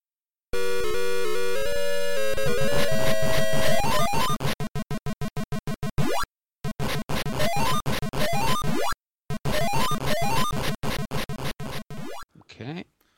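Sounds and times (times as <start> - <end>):
pulsing chiptune patterns from an arcade video game: 0.6 - 12.3
sustained buzzy tone from an arcade video game: 0.6 - 12.3
rapid repeated beeps from an arcade video game: 2.5 - 12.2.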